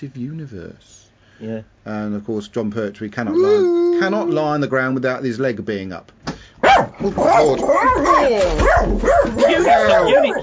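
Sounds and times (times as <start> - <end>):
speech: 0.0 - 6.2, 6.8 - 10.4
dog barking and whimpering with high wavering whines and yips: 6.6 - 10.4.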